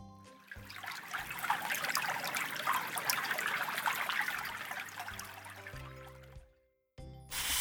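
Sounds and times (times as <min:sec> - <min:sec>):
small stream trickling and babbling: 0:00.4 - 0:06.2
water splashing: 0:00.7 - 0:05.6.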